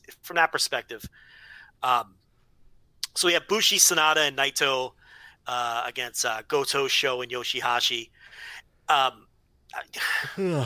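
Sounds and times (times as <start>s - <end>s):
speech: 0.3s - 2.2s, 3.2s - 10.6s
person yawning: 10.1s - 10.6s.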